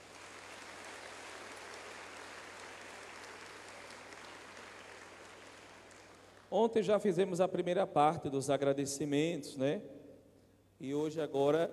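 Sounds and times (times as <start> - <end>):
audience applause: 0.0 - 6.5
speech: 6.5 - 10.0, 10.8 - 11.7.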